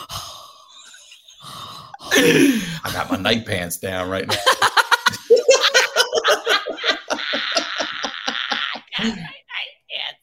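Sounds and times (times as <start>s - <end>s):
heavy breathing: 0.0s - 2.9s
speech: 2.2s - 5.3s
laughter: 4.3s - 9.2s.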